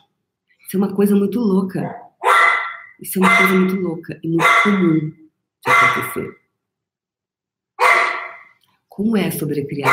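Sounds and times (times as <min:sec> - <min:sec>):
speech: 0:00.7 - 0:02.0, 0:03.0 - 0:06.4, 0:09.0 - 0:09.9
single loud raspy dog bark: 0:01.8 - 0:03.7, 0:04.4 - 0:05.0, 0:05.6 - 0:06.2, 0:07.8 - 0:08.6, 0:09.8 - 0:09.9.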